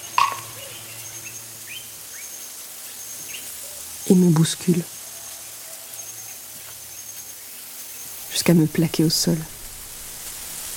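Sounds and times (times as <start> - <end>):
eagle call: 0.0 - 0.8
faint hissing background: 0.0 - 10.7
speech: 4.1 - 5.0, 8.5 - 9.6.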